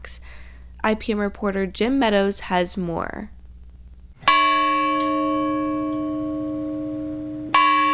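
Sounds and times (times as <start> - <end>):
speech: 0.8 - 3.4
large heavy bell from the World War II battleship USS Illinois struck: 4.2 - 7.9.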